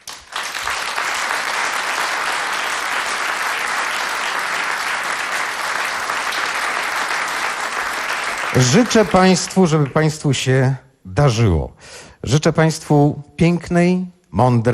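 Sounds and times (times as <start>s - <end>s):
studio audience at a charity concert applauding: 0.0s - 10.2s
speech: 8.6s - 14.7s.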